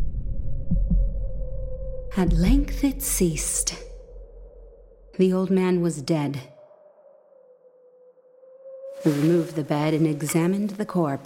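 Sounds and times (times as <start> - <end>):
muffled heartbeat: 0.0 - 1.5, 2.1 - 3.4
speech: 2.1 - 3.8, 5.2 - 6.5, 9.0 - 11.2.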